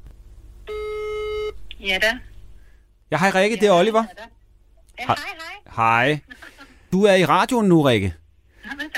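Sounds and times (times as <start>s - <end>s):
low hum: 0.0s - 8.9s
telephone ringback tone while placing a phone call: 0.7s - 1.6s
speech: 1.8s - 2.3s, 3.1s - 4.4s, 5.0s - 8.2s.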